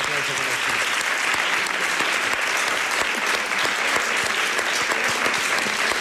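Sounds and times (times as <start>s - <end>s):
room full of people applauding: 0.0s - 5.9s.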